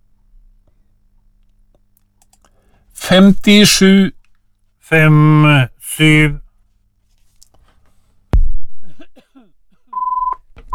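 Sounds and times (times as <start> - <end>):
speech: 3.1 - 4.2, 4.9 - 6.4
loud thud: 8.4 - 8.7.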